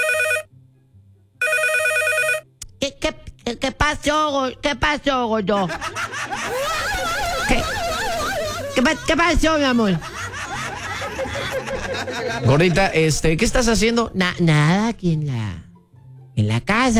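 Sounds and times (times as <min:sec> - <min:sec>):
telephone ringing with bright electronic ringing: 0:00.0 - 0:00.5, 0:01.4 - 0:02.5
speech: 0:02.8 - 0:07.9, 0:08.8 - 0:10.1, 0:11.4 - 0:15.7, 0:16.4 - 0:16.9
laughter: 0:05.6 - 0:13.5.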